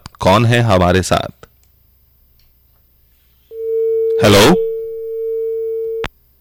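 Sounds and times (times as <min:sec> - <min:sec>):
speech: 0:00.3 - 0:01.4, 0:04.2 - 0:04.7
telephone busy tone after dropped call: 0:03.5 - 0:06.1.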